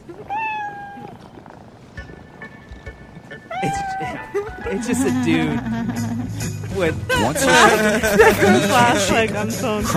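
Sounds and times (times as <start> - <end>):
cat meowing: 0.1 - 1.4, 3.5 - 4.4
laughter: 3.5 - 9.9
speech: 3.6 - 9.9.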